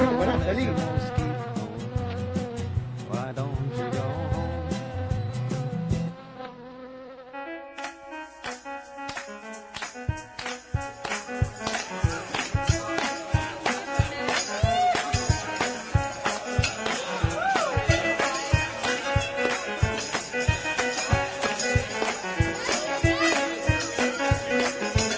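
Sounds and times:
mosquito buzzing: 0.0s - 25.1s
sharp percussive hits: 7.8s - 25.1s.

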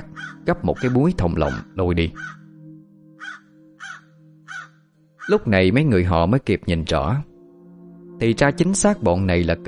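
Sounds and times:
crows cawing around a grave pit: 0.0s - 2.6s, 3.2s - 5.5s
speech: 0.5s - 2.4s, 5.3s - 7.3s, 8.2s - 9.6s.

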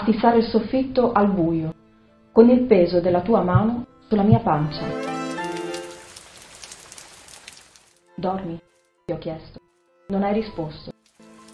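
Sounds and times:
speech: 0.0s - 1.8s, 2.4s - 5.1s, 8.2s - 10.9s
rain beating on shutters and a plastic roof: 4.9s - 8.0s, 11.0s - 11.5s.

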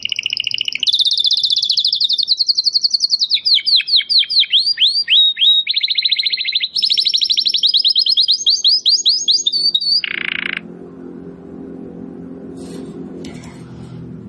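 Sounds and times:
Belgian canary singing: 0.0s - 12.8s.

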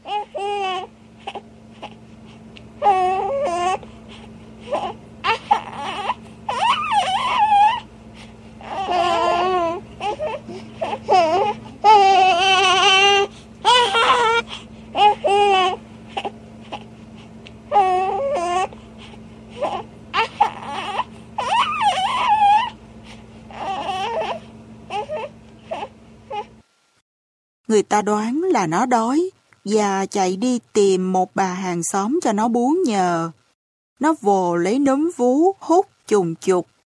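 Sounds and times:
baby boy crying and wailing: 0.0s - 2.0s, 2.8s - 3.8s, 4.7s - 7.9s, 8.6s - 16.9s, 17.7s - 18.8s, 19.6s - 22.8s, 23.5s - 26.5s
speech: 27.9s - 33.4s, 34.0s - 36.7s.

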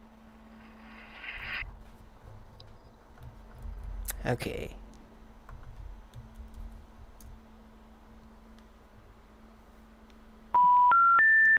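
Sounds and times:
steady hum: 0.0s - 11.5s
speech: 4.2s - 4.8s
electronic telephone tones rising after a call to a non-working number: 10.6s - 11.5s.

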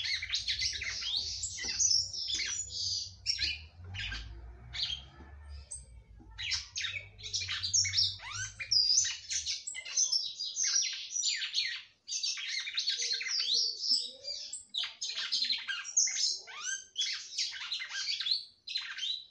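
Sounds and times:
red-cowled cardinal song: 0.0s - 5.0s, 6.4s - 19.2s.

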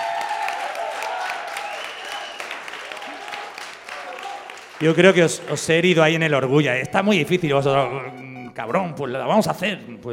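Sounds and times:
audience applause at a live event: 0.0s - 6.3s
speech: 4.8s - 10.1s.

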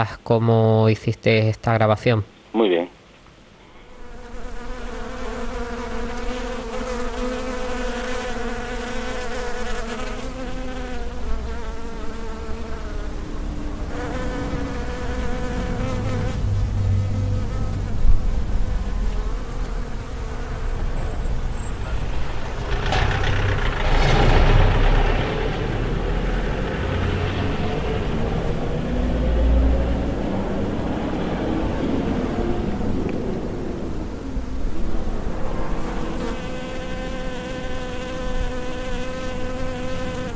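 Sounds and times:
speech: 0.0s - 2.9s
bees buzzing outdoors: 3.9s - 22.6s, 30.7s - 40.3s
low rumble of passing vehicles: 12.5s - 38.7s.

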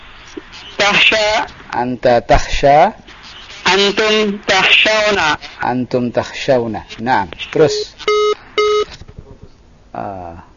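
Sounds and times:
speech: 0.9s - 3.0s, 3.7s - 8.0s, 10.0s - 10.5s
telephone line tone after a dropped call: 7.7s - 8.9s.

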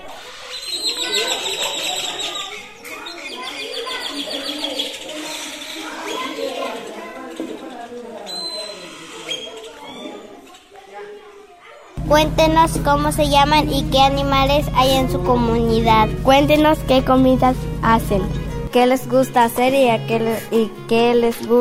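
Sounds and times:
many birds singing in a rural community: 0.3s - 7.7s
speech: 12.1s - 21.6s.

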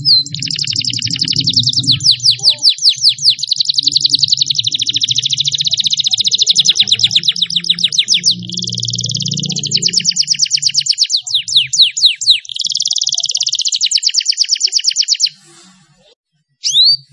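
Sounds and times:
faint low hum: 0.0s - 11.7s
Atlantic canary song of fast rolling trills: 0.0s - 17.1s.

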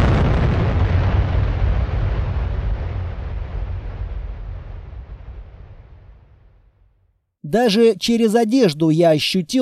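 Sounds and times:
detonating battery explosion blast rumbling: 0.0s - 7.0s
speech: 7.5s - 9.6s.

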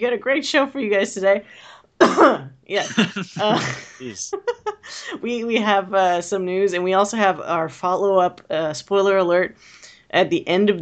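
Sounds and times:
speech: 0.0s - 10.7s
loud cough: 2.0s - 4.2s
laughter: 2.8s - 5.1s.

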